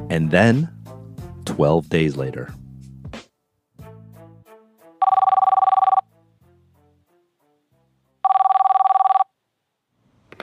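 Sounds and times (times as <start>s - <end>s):
speech: 0.1s - 0.8s, 1.5s - 2.6s
telephone ringing: 5.0s - 6.0s, 8.2s - 9.3s.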